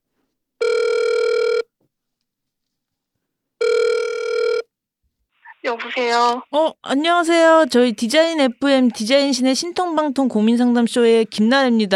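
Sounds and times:
electronic phone ringback tones while a call connects: 0.6 - 1.7, 3.6 - 4.7
speech: 5.7 - 11.9.

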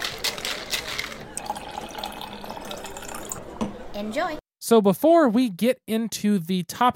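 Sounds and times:
drink poured into a glass: 1.4 - 3.5
speech: 4.0 - 6.9.

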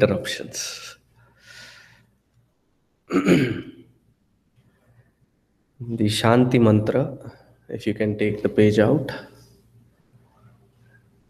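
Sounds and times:
speech: 0.0 - 0.9, 3.1 - 3.7, 5.8 - 9.3
soft breathy exhale: 1.3 - 2.1
throat clearing with cough-like burst: 3.1 - 3.8.

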